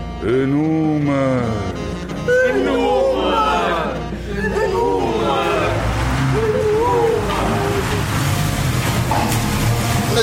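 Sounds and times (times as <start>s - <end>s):
speech: 0.2s - 2.8s
car driving past with engine whine over road rumble: 4.0s - 10.2s.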